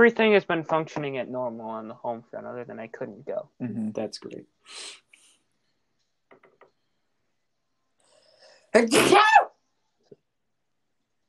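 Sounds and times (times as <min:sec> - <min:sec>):
speech: 0:00.0 - 0:05.0, 0:08.7 - 0:09.5
sharp intake of breath: 0:04.6 - 0:05.3
sneeze: 0:08.8 - 0:09.5.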